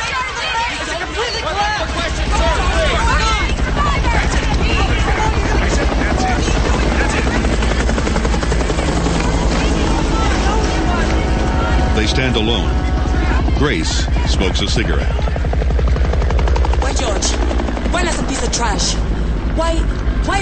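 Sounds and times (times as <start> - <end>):
babble of crowd voices: 0.0 - 20.3
helicopters with searchlights hovering overhead: 0.0 - 20.3
speech: 12.2 - 12.9, 13.6 - 15.4, 18.0 - 20.3.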